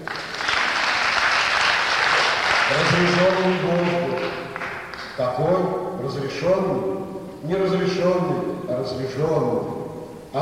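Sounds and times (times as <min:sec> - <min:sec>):
audience applause: 0:00.0 - 0:05.2
speech: 0:02.9 - 0:04.2, 0:05.2 - 0:10.4.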